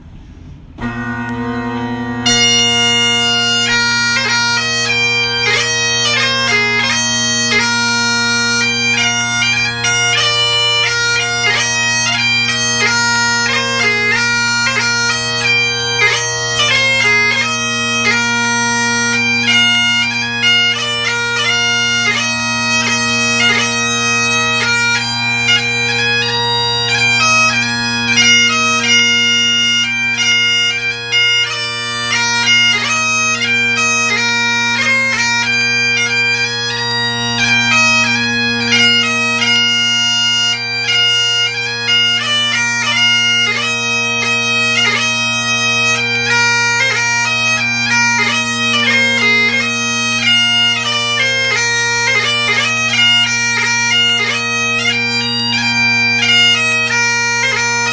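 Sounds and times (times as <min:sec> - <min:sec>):
bagpipes and drums playing a march: 0:00.8 - 0:57.9.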